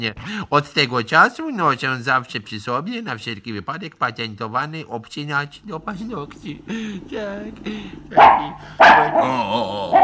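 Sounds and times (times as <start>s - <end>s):
speech: 0.0s - 10.0s
dog growling: 7.0s - 10.0s
dog barking: 8.1s - 10.0s.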